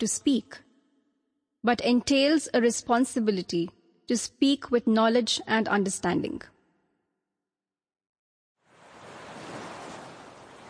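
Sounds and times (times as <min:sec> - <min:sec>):
speech: 0:00.0 - 0:00.6, 0:01.6 - 0:06.5
ocean waves murmuring on the shore: 0:08.6 - 0:10.6.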